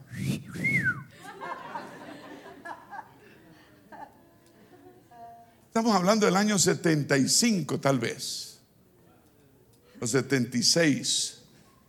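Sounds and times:
person whistling a quick sliding two-part tune: 0:00.1 - 0:01.1
laughter: 0:01.1 - 0:05.1
speech: 0:05.8 - 0:08.5, 0:10.0 - 0:11.4.

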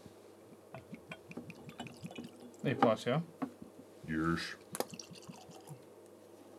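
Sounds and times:
102-proof whiskey pouring into a glass: 0:00.8 - 0:02.7, 0:04.7 - 0:05.8
glass clinking: 0:00.8 - 0:02.7, 0:04.8 - 0:05.8
speech: 0:02.7 - 0:03.4, 0:04.1 - 0:04.7.

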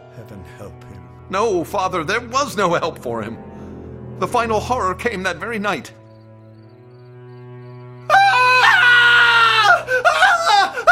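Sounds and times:
speech: 0:00.2 - 0:03.5, 0:04.2 - 0:06.0
man screaming in agony: 0:08.1 - 0:10.9.

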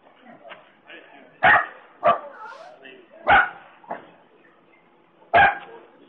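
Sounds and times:
quiet voices murmuring: 0:00.0 - 0:06.0
dog barking: 0:01.4 - 0:03.6, 0:05.3 - 0:05.8.

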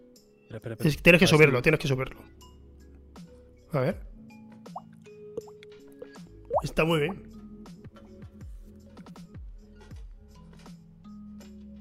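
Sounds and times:
speech: 0:00.5 - 0:02.5, 0:03.7 - 0:04.1, 0:06.6 - 0:07.3
voice imitating dripping water with wet hollow plops: 0:06.5 - 0:07.2.

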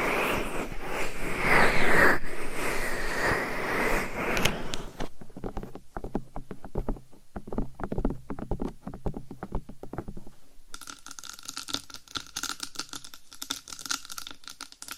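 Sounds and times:
binaural microphone scratching and rubbing: 0:00.0 - 0:10.4
tapping on a binaural microphone: 0:04.4 - 0:12.3.

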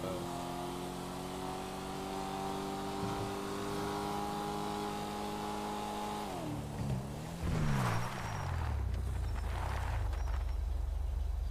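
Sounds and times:
video game car engine on an online game server: 0:00.0 - 0:11.4.

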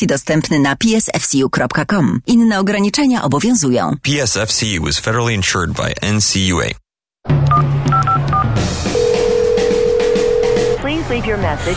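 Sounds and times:
speech: 0:00.0 - 0:08.0, 0:11.1 - 0:11.7
phone keypad beeps dialing a number: 0:07.5 - 0:08.4, 0:09.0 - 0:10.8
phone ringing tone unanswered: 0:07.5 - 0:10.8.

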